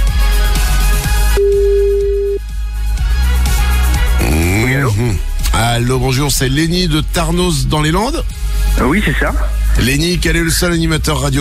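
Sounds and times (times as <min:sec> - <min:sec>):
loud music: 0:00.0 - 0:11.3
telephone line ringing tone, steady pure electronic tone: 0:01.4 - 0:02.4
speech: 0:05.8 - 0:11.3.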